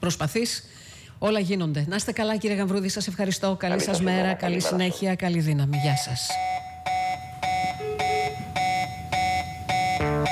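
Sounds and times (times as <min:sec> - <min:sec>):
speech: 0:00.0 - 0:06.6
electronic alarm buzzing: 0:05.7 - 0:10.3.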